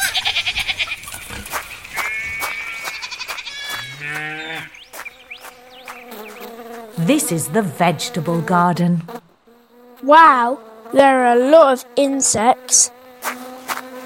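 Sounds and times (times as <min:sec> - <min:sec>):
sheep bleating in a farm courtyard: 0:00.0 - 0:04.8
hens clucking in a farm courtyard: 0:00.0 - 0:09.0
cow mooing in a farm courtyard: 0:03.5 - 0:04.8
speech: 0:07.1 - 0:09.2, 0:10.1 - 0:13.0.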